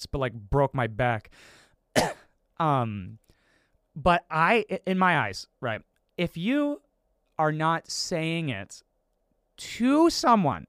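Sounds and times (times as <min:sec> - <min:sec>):
speech: 0:00.0 - 0:03.2, 0:04.0 - 0:06.8, 0:07.4 - 0:08.9, 0:09.6 - 0:10.6
harsh cough: 0:01.9 - 0:02.4.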